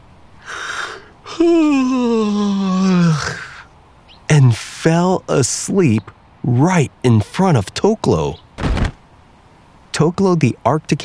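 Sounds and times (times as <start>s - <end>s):
narrator imitating a squirrel's drawn-out yawn: 0.4s - 3.7s
speech: 1.4s - 2.0s, 4.8s - 8.4s, 10.0s - 11.0s.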